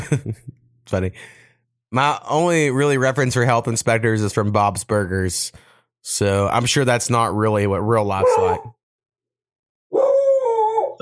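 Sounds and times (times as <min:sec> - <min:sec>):
speech: 0:00.1 - 0:08.8
dog barking outside with a long howling cry: 0:08.2 - 0:08.7, 0:09.9 - 0:11.0.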